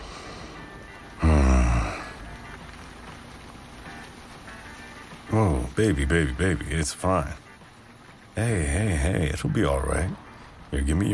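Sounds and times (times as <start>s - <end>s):
steady rain falling: 0.0s - 11.1s
speech: 5.4s - 7.4s, 8.4s - 11.1s.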